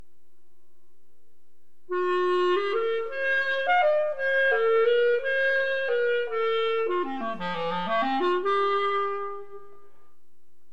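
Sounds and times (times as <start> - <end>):
clarinet: 1.9 - 10.3.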